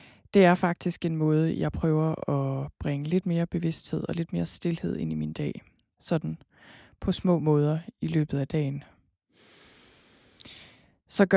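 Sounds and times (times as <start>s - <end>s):
speech: 0.4s - 8.9s, 10.4s - 11.3s
deep breath in and out: 6.5s - 7.0s, 9.3s - 11.0s.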